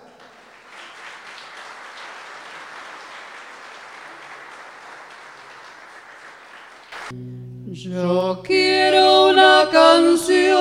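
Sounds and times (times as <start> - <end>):
crowd applauding a musical duo: 0.0 - 7.2
speech: 7.1 - 10.5.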